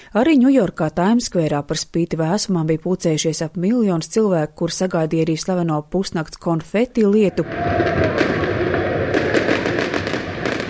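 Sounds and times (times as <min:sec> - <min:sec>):
speech: 0:00.1 - 0:08.5
New Year fireworks exploding in a dense barrage: 0:07.4 - 0:10.6.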